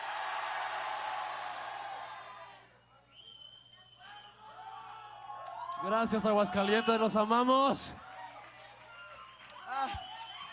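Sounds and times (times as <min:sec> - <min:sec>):
large crowd yelling a name together: 0:00.0 - 0:02.6
speech: 0:05.8 - 0:08.0.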